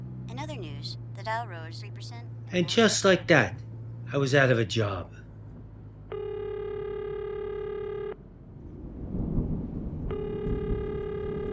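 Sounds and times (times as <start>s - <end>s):
speech: 0.6s - 5.2s
telephone ringback tone over a phone line: 6.1s - 8.2s, 10.1s - 11.5s.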